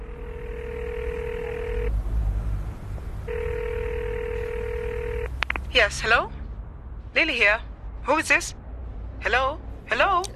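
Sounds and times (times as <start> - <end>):
mobile phone line ringback tone: 0.0 - 1.9, 3.3 - 5.3
low rumbling background: 0.0 - 10.3
speech: 5.8 - 6.4, 7.2 - 8.6, 9.2 - 10.3.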